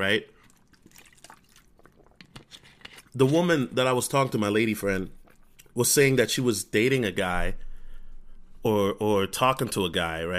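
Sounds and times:
speech: 0.0 - 0.4, 3.2 - 5.2, 5.8 - 7.6, 8.6 - 10.3
person sipping water from a bottle: 0.3 - 3.2, 4.9 - 5.8.

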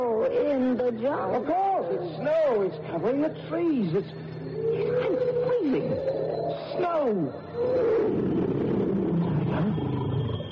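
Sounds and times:
speech: 0.3 - 8.5
deep tiger roar: 7.6 - 10.4.

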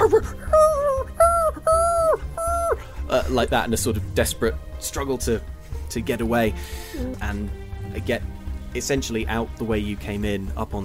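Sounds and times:
human voice imitating a dog's yelping whimper: 0.0 - 2.8, 7.0 - 7.2
speech: 3.3 - 10.8.

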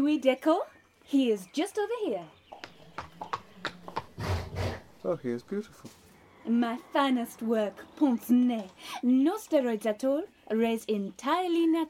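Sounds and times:
speech: 0.0 - 2.4, 5.0 - 11.8
horse hooves clopping: 2.2 - 10.2
horse neighing: 2.5 - 8.9.

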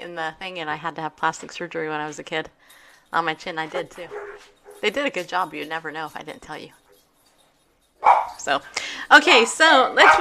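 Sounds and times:
speech: 0.1 - 6.8, 8.0 - 10.1
several dogs barking and yipping: 3.8 - 5.1, 8.0 - 8.4, 9.9 - 10.1
dogs' higher whining yelps: 4.0 - 4.9, 8.0 - 8.4.

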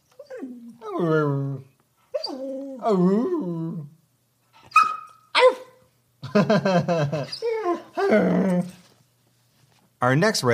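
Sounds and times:
dog whining and whimpering: 0.0 - 4.0, 4.6 - 5.8, 7.1 - 8.9
speech: 2.8 - 3.5, 6.4 - 8.8, 10.0 - 10.5.

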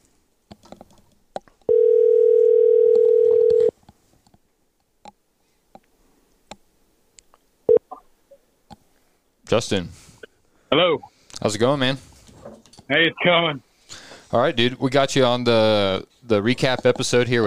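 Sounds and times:
telephone dial tone while placing a call: 1.7 - 3.7
speech: 9.5 - 10.0, 10.7 - 12.1, 12.9 - 13.7, 14.3 - 17.4.

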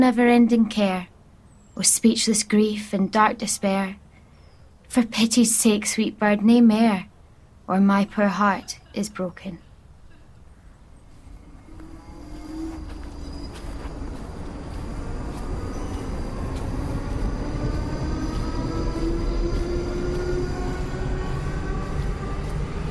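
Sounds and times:
speech: 0.0 - 1.1, 1.8 - 4.0, 4.9 - 7.1, 7.7 - 9.6
train motor whine rising in pitch: 11.1 - 22.8
train wheels and running gear rumbling leaving a station in Surrey: 11.1 - 22.8.

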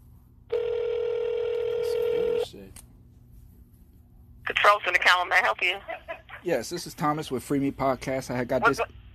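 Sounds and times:
electronic telephone line tone during a call transfer: 0.5 - 2.5
speech: 4.7 - 9.0.

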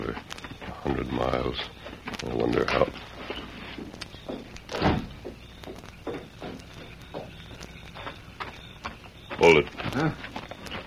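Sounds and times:
footsteps of someone walking out of the house: 0.0 - 10.8
speech: 0.9 - 3.4
house door thudding open with a heavy knock: 4.3 - 5.4.

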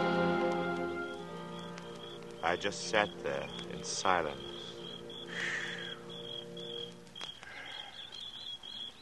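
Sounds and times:
bird calling: 0.1 - 9.0
crickets chirping: 0.9 - 9.0
speech: 2.5 - 4.5.

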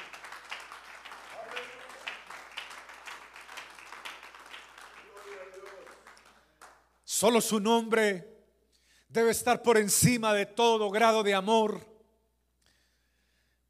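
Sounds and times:
church audience applauding: 0.0 - 6.9
speech: 7.2 - 8.3, 9.2 - 11.9.

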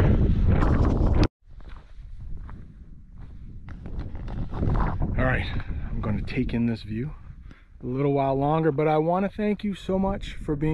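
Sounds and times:
rustles and bumps: 0.0 - 6.3
strong wind on a mountain summit buffeting the microphone: 0.0 - 10.7
speech: 5.4 - 7.2, 7.8 - 10.7.

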